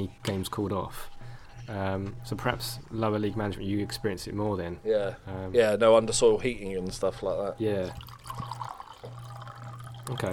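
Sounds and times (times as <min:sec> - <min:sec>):
speech: 0:00.0 - 0:08.6, 0:10.1 - 0:10.3
wine pouring into a glass: 0:07.7 - 0:10.3.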